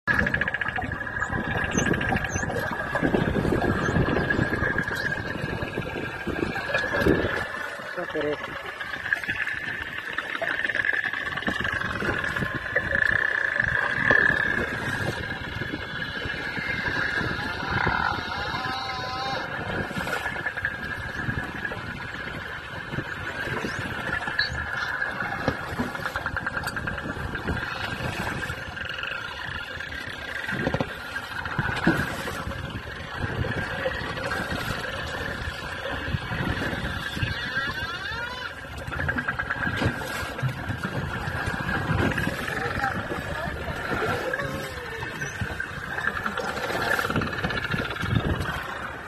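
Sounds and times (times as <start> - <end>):
whale vocalization: 0.0 - 49.0.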